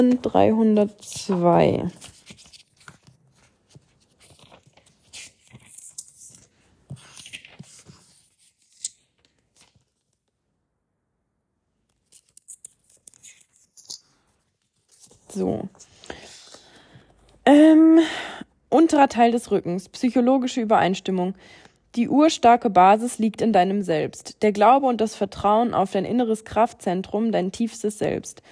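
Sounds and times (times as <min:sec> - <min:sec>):
speech: 0:00.0 - 0:02.2, 0:15.4 - 0:15.8, 0:17.5 - 0:28.4
pages of a thick book being flipped: 0:00.0 - 0:10.4, 0:11.9 - 0:17.4.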